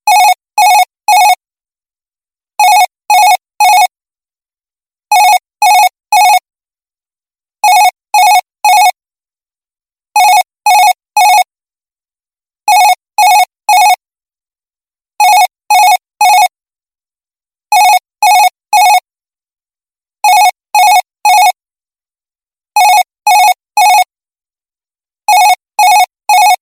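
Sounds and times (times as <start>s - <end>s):
office phone ringtone: 0.1s - 1.4s, 2.6s - 3.9s, 5.1s - 6.4s, 7.6s - 9.0s, 10.2s - 11.5s, 12.7s - 14.0s, 15.2s - 16.5s, 17.7s - 19.0s, 20.2s - 21.6s, 22.8s - 24.1s, 25.3s - 26.6s.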